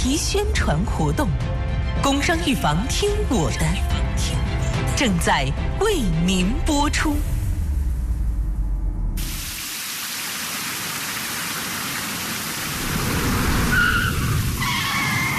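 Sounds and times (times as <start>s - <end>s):
speech: 0.0s - 7.3s
low rumble: 5.4s - 9.4s
heavy rain: 9.2s - 15.3s
high squeal possibly of tires on a wet road: 13.6s - 15.3s.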